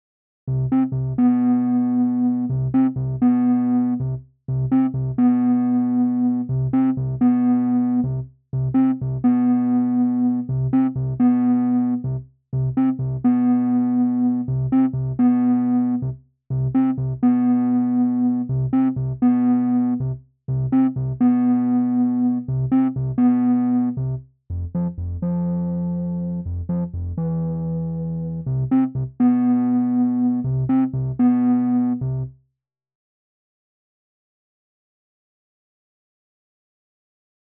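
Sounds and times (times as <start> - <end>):
improvised bass riff in F: 0.5 - 32.3.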